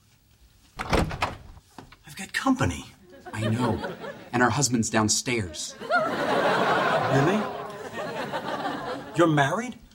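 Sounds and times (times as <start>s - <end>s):
door opening with rattling and scraping: 0.8s - 1.6s
speech: 2.4s - 7.5s, 9.2s - 9.8s
laughter: 3.0s - 9.6s.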